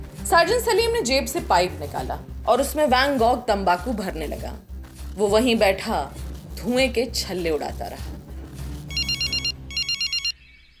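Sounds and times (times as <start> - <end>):
speech: 0.3 - 8.2
telephone bell ringing: 8.9 - 10.4.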